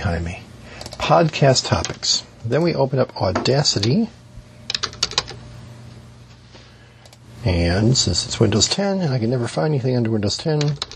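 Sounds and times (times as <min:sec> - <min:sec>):
speech: 0:00.0 - 0:04.2, 0:07.4 - 0:10.9
computer keyboard keystrokes: 0:04.7 - 0:05.4, 0:10.6 - 0:10.9.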